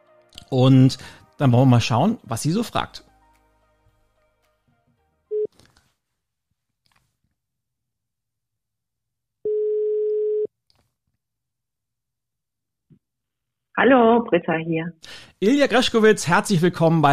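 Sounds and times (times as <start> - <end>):
speech: 0.5 - 3.1, 13.8 - 17.1
outgoing call ringback tone: 9.5 - 10.5.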